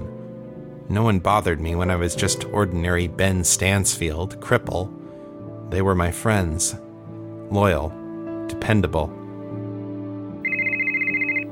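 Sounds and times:
speech: 0.9s - 5.0s, 5.7s - 6.9s, 7.5s - 9.2s
phone ringing with electronic trill: 10.4s - 11.5s.

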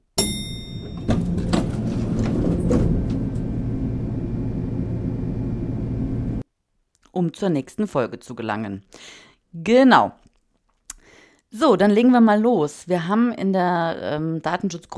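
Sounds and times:
hotel elevator mechanical clunk and rattling as it starts: 0.2s - 6.4s
speech: 7.2s - 10.2s, 11.5s - 14.9s.

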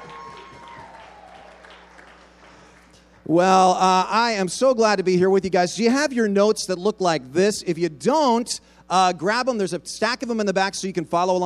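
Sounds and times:
audience applauding a composer of daytime drama music: 0.0s - 3.0s
speech: 3.3s - 11.4s.

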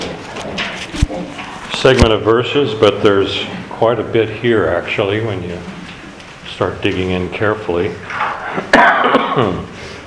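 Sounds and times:
speech: 1.8s - 5.8s, 6.5s - 9.7s
person clearing throat: 8.4s - 9.8s
person coughing: 8.5s - 9.8s.

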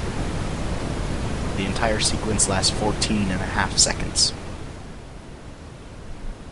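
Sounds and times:
broadband TV static hiss: 0.0s - 6.5s
speech: 1.6s - 4.4s.

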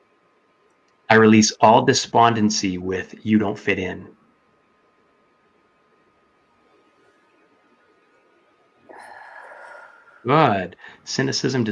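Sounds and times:
speech: 1.1s - 4.2s, 10.2s - 11.7s
deep breath in during a guided release exercise: 8.9s - 11.1s.

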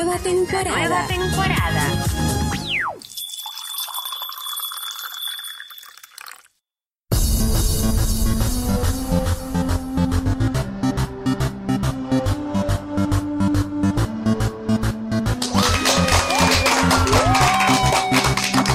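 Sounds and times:
upbeat music with a steady beat: 0.0s - 3.0s, 7.1s - 18.7s
speech: 0.0s - 3.1s
audience clapping and cheering: 15.3s - 18.7s
audience whistles: 15.6s - 18.7s.

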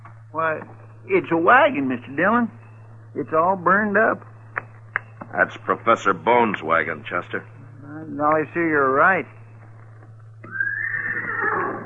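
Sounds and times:
low hum: 0.0s - 11.8s
speech: 0.4s - 4.3s, 5.3s - 9.4s
horse neighing beside a burned-out wagon: 10.4s - 11.8s.

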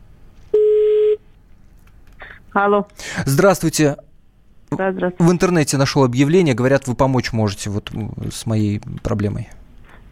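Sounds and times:
telephone line tone on an outgoing call: 0.6s - 1.2s
speech: 2.6s - 4.1s, 4.7s - 9.6s.

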